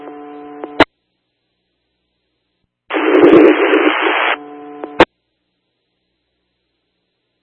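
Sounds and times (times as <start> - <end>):
radio static: 2.9 - 5.1.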